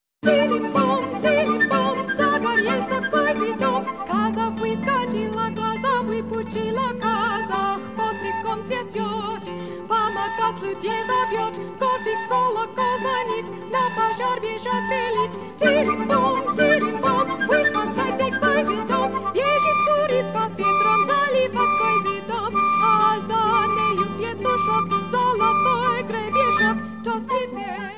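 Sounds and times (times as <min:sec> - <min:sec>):
flute: 0:00.2 - 0:27.9
harp: 0:00.2 - 0:27.9
voice singing: 0:00.3 - 0:05.2, 0:15.6 - 0:27.9.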